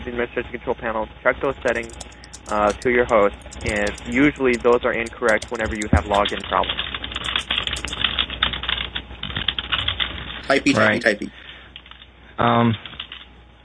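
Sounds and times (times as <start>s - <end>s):
speech: 0.1s - 7.5s, 10.5s - 11.4s, 12.4s - 12.9s
typing on a computer keyboard: 1.5s - 10.4s, 12.8s - 13.3s
short voiced sounds with no clear words: 10.4s - 11.3s.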